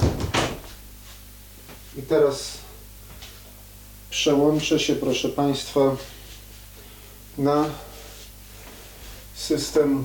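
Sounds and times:
door shutting with a thud: 0.0s - 0.8s
speech: 2.0s - 2.6s, 4.1s - 6.2s, 7.4s - 7.9s, 9.4s - 10.0s.

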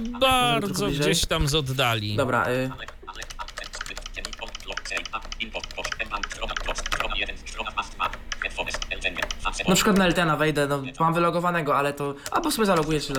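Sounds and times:
speech: 0.0s - 3.3s, 8.6s - 13.1s
fast typing on a Logitech MX Mechanical computer keyboard: 2.8s - 10.2s, 12.2s - 13.1s.

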